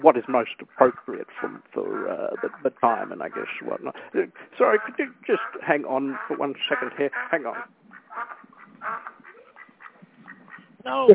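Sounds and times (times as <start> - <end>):
speech: 0.0 - 9.0, 10.8 - 11.1
duck quacking loudly in a car: 0.6 - 10.7.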